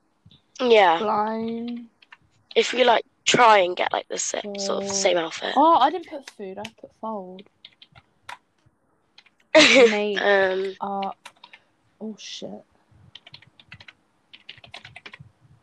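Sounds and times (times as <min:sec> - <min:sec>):
speech: 0:00.6 - 0:01.9, 0:02.6 - 0:07.6, 0:09.6 - 0:11.3, 0:12.0 - 0:12.7
short burst of voiced sound: 0:04.5 - 0:05.1
typing on a laptop keyboard: 0:07.6 - 0:08.4, 0:09.2 - 0:09.4, 0:11.0 - 0:11.6, 0:13.1 - 0:15.3.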